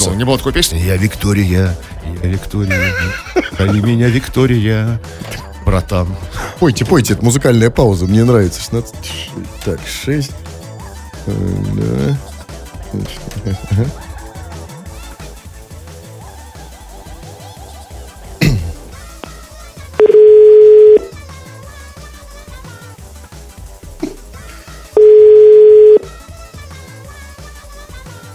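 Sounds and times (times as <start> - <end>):
speech: 0.0 - 10.4, 11.2 - 12.3, 12.9 - 14.0
laughter: 2.1 - 4.6, 13.3 - 15.2, 16.2 - 19.0
telephone ringback tone during an outgoing call: 20.0 - 21.2, 24.9 - 26.2.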